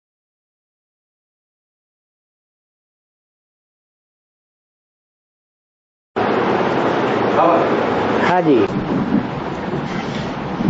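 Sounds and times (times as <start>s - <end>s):
steady dense rainfall: 6.2s - 10.6s
deep rumble of thunder: 6.3s - 10.6s
speech: 8.3s - 9.2s.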